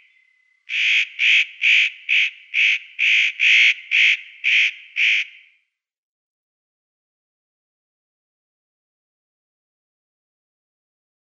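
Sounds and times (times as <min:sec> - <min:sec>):
Eurasian nutcracker grating scratchy calls: 0:00.7 - 0:05.2.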